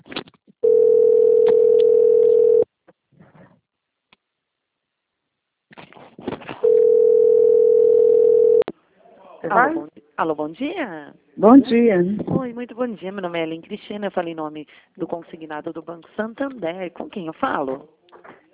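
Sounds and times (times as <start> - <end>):
telephone dial tone while a number is dialed: 0.6 - 2.7, 6.6 - 8.6
speech: 9.5 - 18.0.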